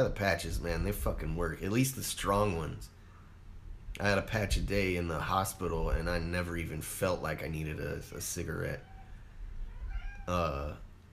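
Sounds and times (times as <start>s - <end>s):
speech: 0.0s - 3.0s, 4.0s - 8.9s, 10.3s - 10.8s
low rumble: 0.0s - 11.1s
cat meowing: 8.8s - 10.6s
faint thin cry: 8.8s - 10.8s.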